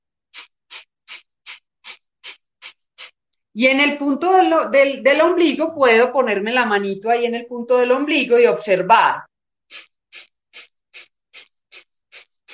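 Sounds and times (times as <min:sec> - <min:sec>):
rapid forceful yogic breath of fire breathing through the nose: 0:00.3 - 0:03.5, 0:09.7 - 0:12.5
speech: 0:03.6 - 0:09.3.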